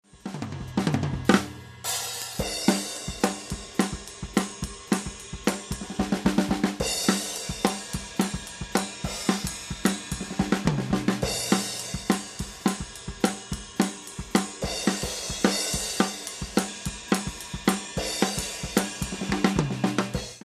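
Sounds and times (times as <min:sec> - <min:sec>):
drum kit with ride cymbal: 0:00.0 - 0:20.4.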